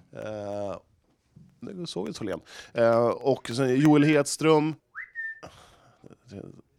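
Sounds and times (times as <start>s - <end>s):
speech: 1.8s - 4.8s, 6.3s - 6.6s
person whistling a short rising note: 5.0s - 5.5s.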